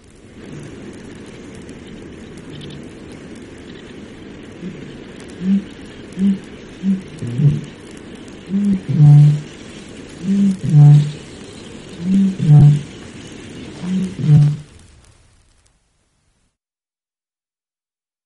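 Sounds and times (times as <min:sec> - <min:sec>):
Eurasian bittern booming: 0:04.6 - 0:07.8, 0:08.5 - 0:09.5, 0:10.2 - 0:11.2, 0:12.0 - 0:12.9, 0:13.8 - 0:14.6.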